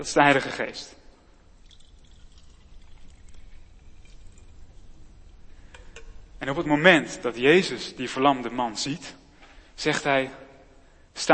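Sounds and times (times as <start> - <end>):
speech: 0.0 - 1.0, 6.4 - 9.2, 9.8 - 10.4
water being poured: 1.4 - 6.7.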